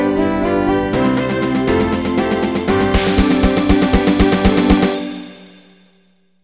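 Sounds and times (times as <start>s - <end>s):
house music intro: 0.2s - 5.0s.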